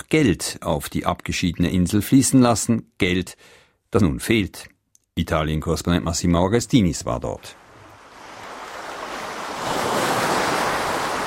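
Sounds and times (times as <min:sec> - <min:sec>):
speech: 0:00.1 - 0:07.6
gentle waves washing against a harbour pier in Lampedusa Italy: 0:07.6 - 0:11.2
light wind: 0:07.6 - 0:11.2.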